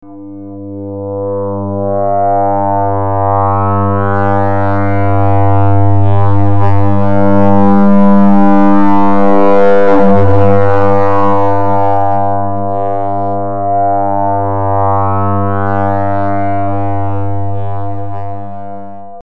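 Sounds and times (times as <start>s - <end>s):
long resonant distorted drone: 0.0s - 19.2s.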